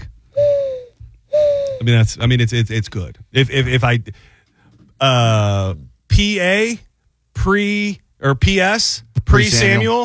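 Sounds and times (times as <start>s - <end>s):
person imitating mourning dove coo: 0.4s - 1.8s
speech: 1.8s - 4.3s, 5.0s - 10.0s.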